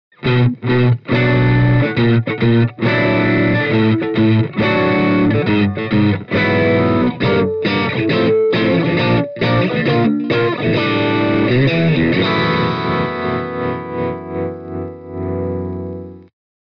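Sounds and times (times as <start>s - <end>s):
crunch electric guitar through a guitar speaker: 0.1s - 16.3s.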